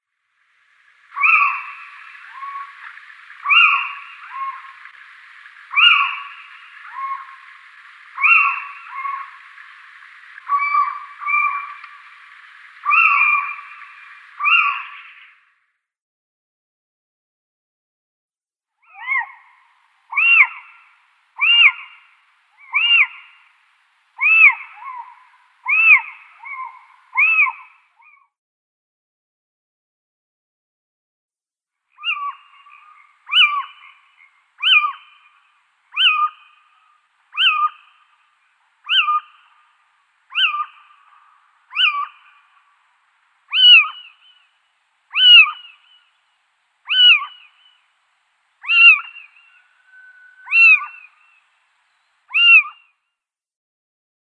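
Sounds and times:
Little Owl calls: 1.0 - 15.4, 18.8 - 23.6, 24.2 - 28.3, 32.0 - 46.1, 46.8 - 47.9, 48.6 - 51.5, 52.3 - 52.9.

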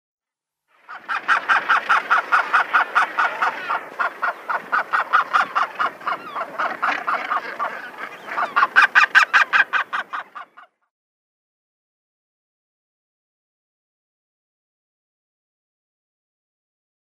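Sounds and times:
Northern Gannet nestling calling: 0.8 - 10.8.

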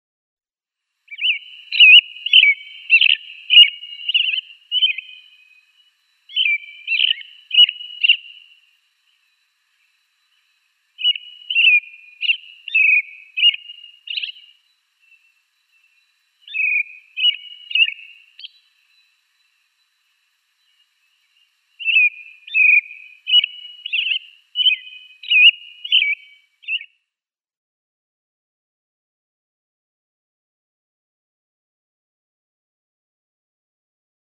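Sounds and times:
American robin singing: 1.1 - 27.0.

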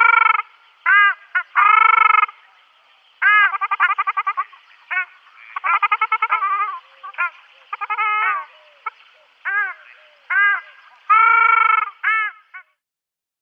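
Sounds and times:
ruddy shelduck giving loud nasal honks: 0.0 - 2.4, 3.2 - 12.5.

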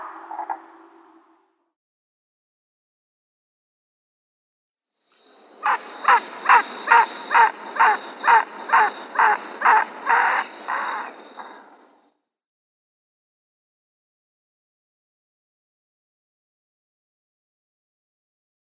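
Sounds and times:
Goliath heron flight call: 5.6 - 11.5.

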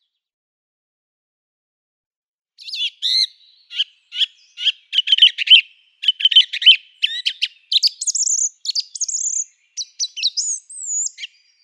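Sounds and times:
song thrush song: 2.6 - 11.6.

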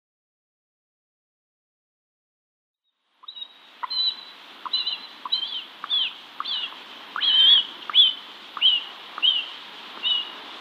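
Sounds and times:
black vulture nestling giving high thin slurred notes: 3.2 - 10.5.

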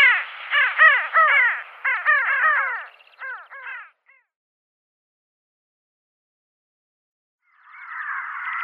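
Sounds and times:
Pin-tailed sandgrouse giving harsh nasal calls: 0.0 - 3.9, 7.8 - 8.6.

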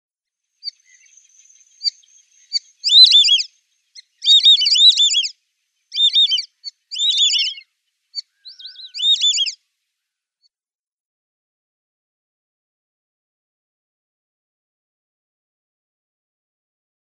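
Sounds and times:
White-faced Whistling-Duck calling: 2.6 - 3.5, 4.2 - 5.3, 5.9 - 7.6, 8.2 - 9.6.

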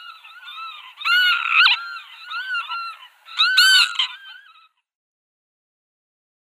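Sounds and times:
Northern lapwing calls: 0.0 - 4.9.

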